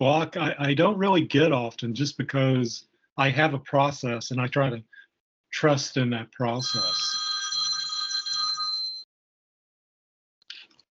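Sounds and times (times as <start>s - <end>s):
speech: 0.0s - 7.2s
telephone ringing with an electronic trill: 6.6s - 9.1s.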